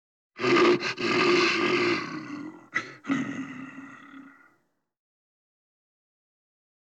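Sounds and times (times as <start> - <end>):
bear growling: 0.4 - 4.5.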